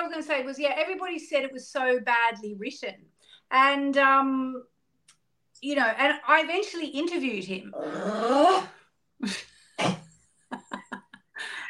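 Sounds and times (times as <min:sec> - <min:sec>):
speech: 0:00.1 - 0:04.7, 0:05.6 - 0:10.0
person sneezing: 0:09.8 - 0:10.1
voiced breath: 0:11.4 - 0:11.6.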